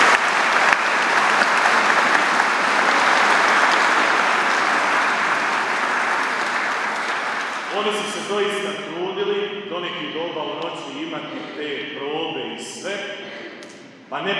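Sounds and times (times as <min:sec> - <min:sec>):
audience applauding to greet performers: 0:00.0 - 0:08.6
speech: 0:07.8 - 0:08.9, 0:09.8 - 0:13.4, 0:14.1 - 0:14.3.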